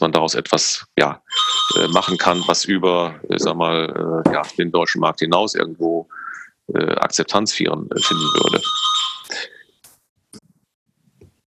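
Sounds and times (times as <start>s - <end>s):
speech: 0.0s - 9.6s
doorbell ringing with a loud bright tone: 1.3s - 2.8s, 8.0s - 9.5s.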